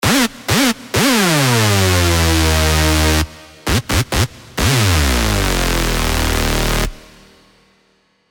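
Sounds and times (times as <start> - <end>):
modern hoover synth sound: 1.2 - 7.6.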